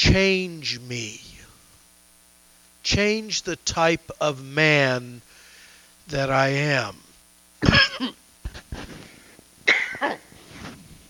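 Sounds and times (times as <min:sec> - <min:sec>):
speech: 0:00.1 - 0:01.3, 0:02.8 - 0:05.3, 0:06.1 - 0:07.0, 0:07.6 - 0:08.2
person clearing throat with a tickle in the throat: 0:07.6 - 0:08.6, 0:09.7 - 0:10.3
person coughing with a tickle in the throat while teaching on a Bible passage: 0:07.6 - 0:08.6, 0:09.7 - 0:10.3.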